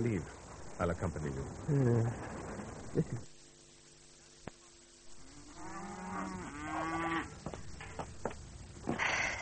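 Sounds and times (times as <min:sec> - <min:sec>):
speech: 0:00.0 - 0:03.3
cow mooing: 0:05.3 - 0:07.3.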